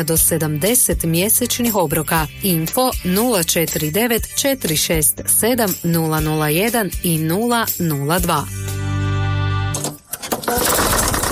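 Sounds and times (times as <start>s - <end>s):
speech: 0.0s - 8.6s
tractor engine sputtering and stalling: 9.7s - 11.3s.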